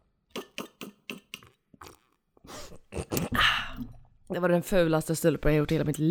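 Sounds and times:
person slurping hot tea without a spoon: 0:00.3 - 0:03.4
speech: 0:04.3 - 0:06.0.

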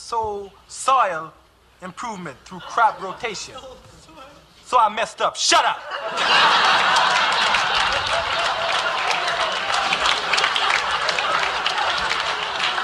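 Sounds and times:
speech: 0:00.1 - 0:08.4
laughter: 0:02.5 - 0:04.2, 0:05.7 - 0:12.8
audience applause: 0:06.1 - 0:12.8.

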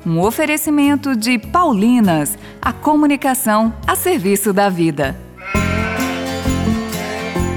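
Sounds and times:
speech: 0:00.0 - 0:05.2
several sheep bleating: 0:05.4 - 0:07.5.

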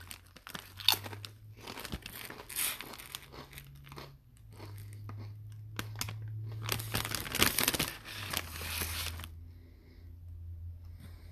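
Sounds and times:
dill pickle potato chips crunching during a taste test: 0:00.0 - 0:09.4
chewing dill pickle potato chips during a taste test: 0:00.5 - 0:06.6.

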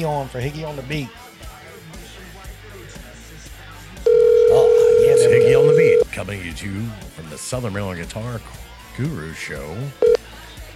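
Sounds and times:
speech: 0:00.0 - 0:01.3, 0:06.1 - 0:10.2
telephone dial tone: 0:04.1 - 0:06.0.

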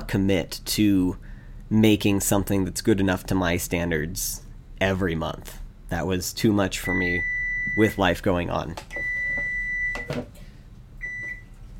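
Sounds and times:
low hum: 0:00.0 - 0:11.7
speech: 0:00.1 - 0:09.1, 0:10.0 - 0:10.4
microwave oven beeping when the eggs are done: 0:06.8 - 0:08.1, 0:08.9 - 0:10.3, 0:11.0 - 0:11.6.

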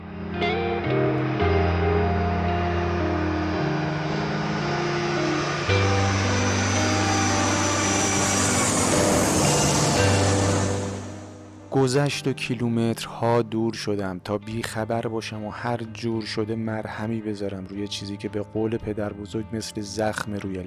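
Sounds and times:
airplane cabin roar: 0:00.0 - 0:11.7
speech: 0:11.8 - 0:20.6.

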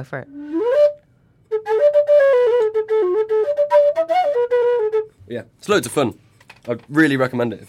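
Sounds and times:
speech: 0:00.0 - 0:00.7, 0:05.3 - 0:07.6
lively melody on a tin whistle: 0:00.4 - 0:05.1.

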